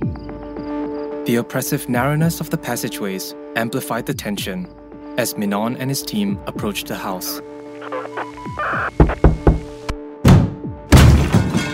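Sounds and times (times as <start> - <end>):
speech: 1.3 - 9.4
house door being thrown open: 10.2 - 11.7.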